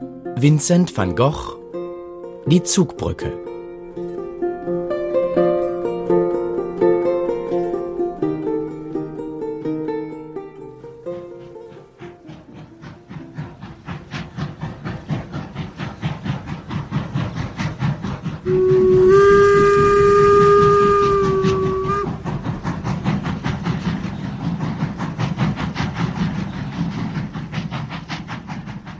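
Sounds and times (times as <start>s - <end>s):
steam train chugging: 0.1s - 28.9s
speech: 0.4s - 1.6s, 2.5s - 3.5s
steam train whistle blowing: 18.4s - 22.4s.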